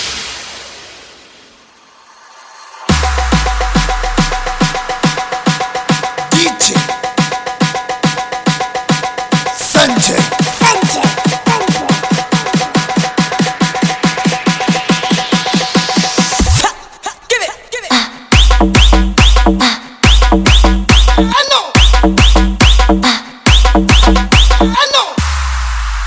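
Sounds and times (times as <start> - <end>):
beats: 2.9 - 16.6, 18.3 - 25.9
whistle: 18.3 - 19.5, 20.1 - 21.2, 21.7 - 22.8, 23.5 - 24.7.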